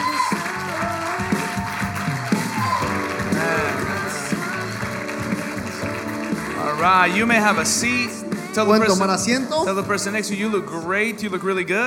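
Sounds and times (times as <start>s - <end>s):
crowd cheering: 0.0s - 7.7s
audience clapping: 0.0s - 9.0s
speech: 6.8s - 11.8s.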